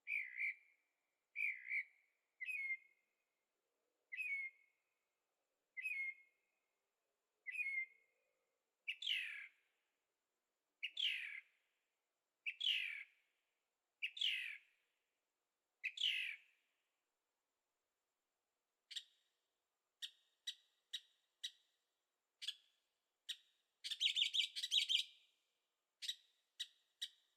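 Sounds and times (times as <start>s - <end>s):
bird chirping at night in Carefree Arizona: 0.0s - 0.8s, 1.4s - 3.0s, 4.1s - 4.7s, 5.8s - 6.3s, 7.4s - 8.0s, 8.9s - 9.6s, 10.8s - 11.6s, 12.4s - 13.2s, 14.0s - 14.8s, 15.8s - 16.6s, 18.9s - 19.3s, 20.0s - 21.8s, 22.4s - 25.4s, 26.0s - 27.3s.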